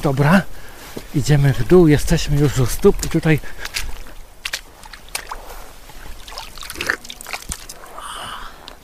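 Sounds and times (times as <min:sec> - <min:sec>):
speech: 0:00.0 - 0:03.9
steady noise: 0:00.0 - 0:08.8
spring water slurped from the source: 0:03.4 - 0:08.8.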